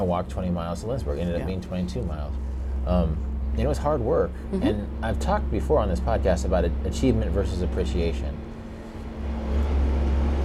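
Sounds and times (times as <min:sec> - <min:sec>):
speech: 0:00.0 - 0:08.4
backhoe loader with diesel engine driving past: 0:07.9 - 0:10.4.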